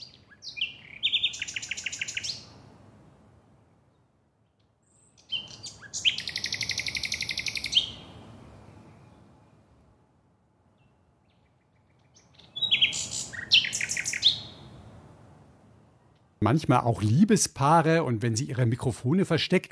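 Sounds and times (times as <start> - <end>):
common nightingale singing: 0.0 - 2.6, 3.9 - 9.6, 10.8 - 14.8
speech: 16.5 - 19.6.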